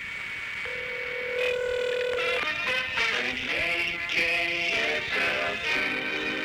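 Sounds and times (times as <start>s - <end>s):
telephone line ringing a home: 0.6s - 6.4s.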